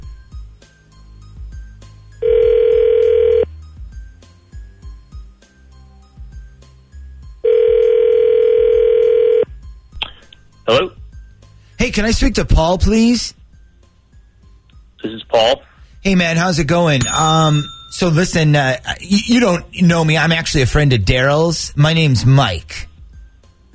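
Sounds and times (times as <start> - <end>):
telephone ringback tones: 2.2 - 3.5, 7.4 - 9.5
speech: 12.0 - 13.4, 15.4 - 22.8.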